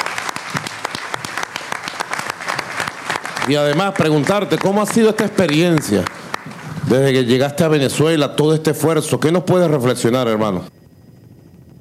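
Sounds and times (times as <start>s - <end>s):
audience applause: 0.0s - 7.6s
speech: 3.5s - 6.2s, 6.8s - 10.8s.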